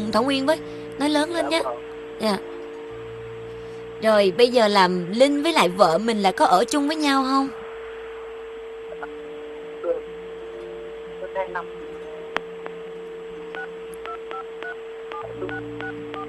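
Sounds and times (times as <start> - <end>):
speech: 0.0 - 2.6, 4.0 - 7.6, 11.4 - 11.8
steady low hum: 0.0 - 16.2
telephone keypad tones as phone buttons are pressed during a call: 13.5 - 16.2.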